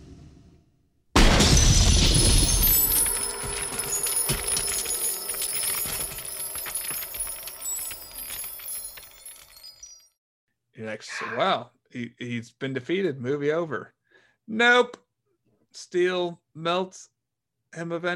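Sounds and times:
figure frozen by liquid nitrogen shattering: 0:01.2 - 0:09.8
tinkling scattering fragments: 0:01.6 - 0:10.2
speech: 0:10.8 - 0:15.0, 0:15.7 - 0:17.1, 0:17.7 - 0:18.1.

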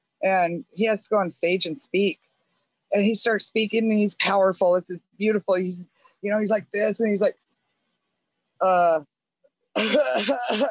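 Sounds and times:
speech: 0:00.2 - 0:02.3, 0:02.9 - 0:07.4, 0:08.6 - 0:09.1, 0:09.8 - 0:10.6
voice imitating a coughing fit: 0:09.8 - 0:10.6.

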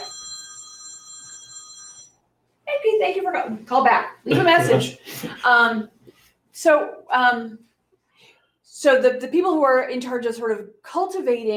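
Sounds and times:
telephone ringing with electronic trill: 0:00.0 - 0:02.2
speech: 0:02.8 - 0:06.0, 0:06.6 - 0:07.7, 0:08.8 - 0:11.5.

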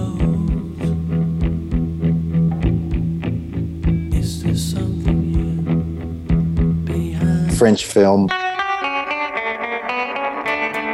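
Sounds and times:
bass guitar with chorus effect playing plucked notes: 0:00.0 - 0:10.9
speech: 0:07.6 - 0:08.4.

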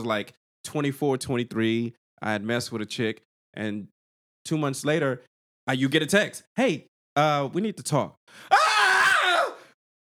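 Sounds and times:
speech: 0:00.0 - 0:08.6
person screaming in dread: 0:08.5 - 0:09.7.

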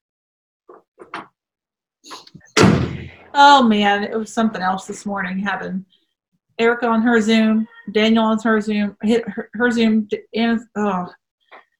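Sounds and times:
door shutting with a loud thud: 0:02.1 - 0:03.3
speech: 0:03.3 - 0:06.0, 0:06.6 - 0:11.2.

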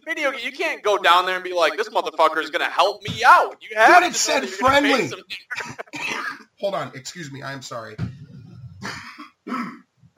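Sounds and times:
speech: 0:00.0 - 0:08.2, 0:08.8 - 0:09.8
laughter: 0:01.5 - 0:02.6, 0:03.9 - 0:06.4
person coughing: 0:05.5 - 0:06.4, 0:08.8 - 0:09.9.

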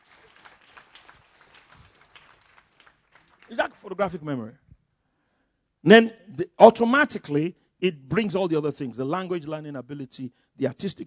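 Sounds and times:
crowd clapping in a clap offering: 0:00.0 - 0:04.3
speech: 0:03.5 - 0:04.6, 0:05.8 - 0:11.0.

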